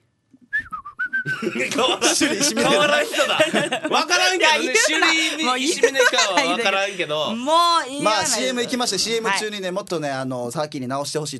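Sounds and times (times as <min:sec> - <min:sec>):
person whistling: 0:00.4 - 0:01.4
laughter: 0:01.2 - 0:07.2
speech: 0:01.3 - 0:11.3.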